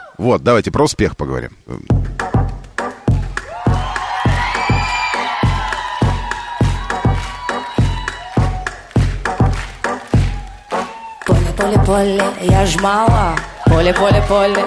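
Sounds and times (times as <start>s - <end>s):
speech: 0.2s - 2.1s, 11.9s - 14.6s
crowd clapping in a steady rhythmic beat: 2.1s - 14.6s
people cheering and whooping: 2.9s - 9.1s, 10.1s - 11.4s, 13.3s - 14.6s.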